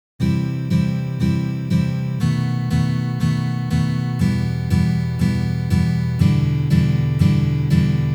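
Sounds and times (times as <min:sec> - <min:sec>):
B7 guitar chord: 0:00.2 - 0:08.1.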